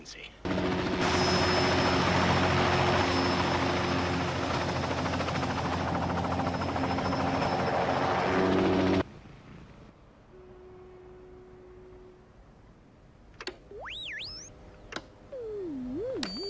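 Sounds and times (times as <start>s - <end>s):
speech: 0.0s - 0.8s
helicopter rotor chop and engine whine: 0.4s - 9.0s, 13.6s - 16.4s.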